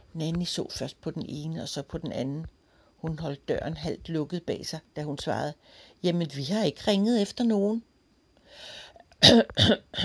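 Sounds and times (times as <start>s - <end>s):
speech: 0.2s - 7.9s, 8.5s - 10.0s
throat clearing: 9.2s - 10.0s.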